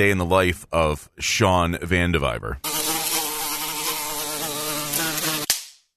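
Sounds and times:
speech: 0.0 - 2.9
housefly buzzing: 2.6 - 5.6
sharp swat-like click: 5.4 - 5.8.

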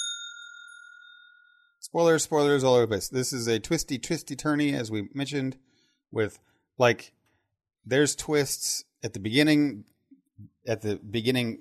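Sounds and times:
bright bell ding with a sustained ringing tone: 0.0 - 1.8
speech: 1.9 - 7.2, 7.8 - 11.6.

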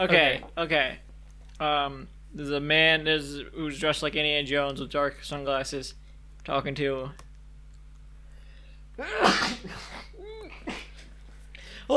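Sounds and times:
speech: 0.0 - 1.0, 1.6 - 7.2, 9.0 - 10.0
low steady hum: 0.0 - 11.9
stifled held-in sneeze: 9.0 - 11.1.

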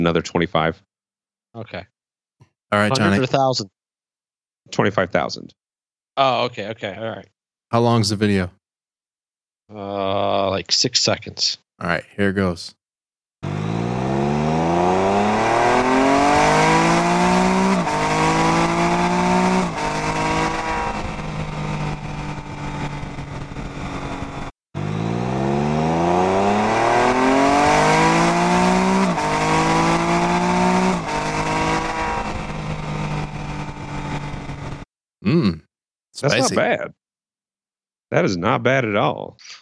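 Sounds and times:
speech: 0.0 - 0.9, 1.5 - 1.9, 2.7 - 3.8, 4.7 - 5.6, 6.2 - 8.6, 9.7 - 12.8, 36.2 - 37.0, 38.1 - 39.5
car engine revving hard during a drifting run: 13.4 - 34.8.

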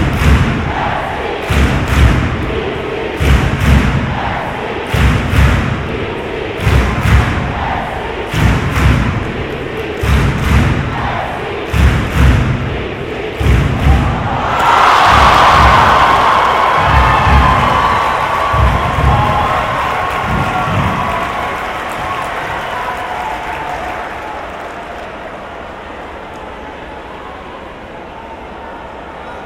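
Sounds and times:
stadium crowd clapping and stamping in a rhythmic beat: 0.0 - 2.6, 3.2 - 4.3, 4.9 - 5.9, 6.6 - 7.7, 8.3 - 11.1, 11.7 - 12.7, 13.4 - 25.3
stadium crowd roaring and cheering: 0.0 - 29.4.

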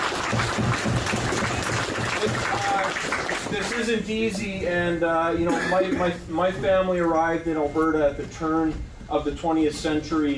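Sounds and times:
audience applause: 0.0 - 3.8
speech: 0.3 - 1.2, 2.2 - 10.3.

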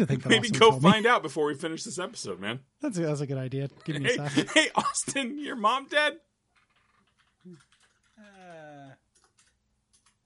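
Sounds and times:
speech: 0.0 - 6.3, 7.4 - 9.0
typing on a keyboard: 6.6 - 8.5, 9.1 - 10.2.

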